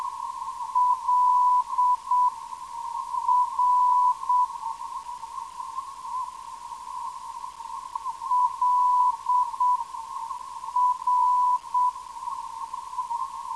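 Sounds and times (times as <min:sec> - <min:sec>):
770kHz non-directional beacon signal: 0:00.8 - 0:02.3, 0:03.3 - 0:04.5, 0:08.3 - 0:09.8, 0:10.8 - 0:12.0.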